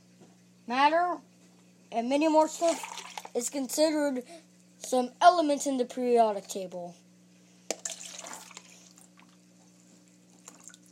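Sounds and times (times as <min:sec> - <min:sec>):
steady low electrical hum: 0:00.0 - 0:10.8
speech: 0:00.7 - 0:01.3, 0:01.9 - 0:07.0
spilled water splashing: 0:02.4 - 0:03.4, 0:07.7 - 0:09.4.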